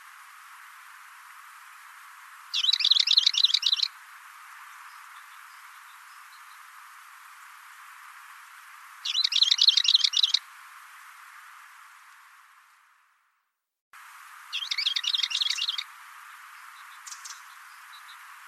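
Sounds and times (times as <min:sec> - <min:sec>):
bird giving rapid high warbling chirps: 0:02.5 - 0:03.9, 0:09.0 - 0:10.4, 0:14.5 - 0:15.8, 0:16.8 - 0:18.2.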